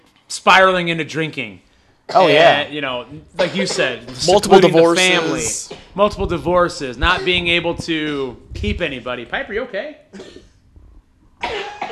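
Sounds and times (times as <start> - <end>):
speech: 0.4 - 10.5
dog giving a sharp raspy cough: 3.4 - 4.1, 10.1 - 10.6, 11.4 - 11.9.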